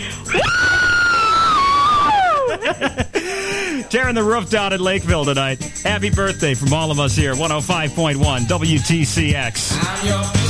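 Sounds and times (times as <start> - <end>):
crowd screaming: 0.3 - 2.6
laughter: 0.3 - 3.9
speech: 3.9 - 10.4.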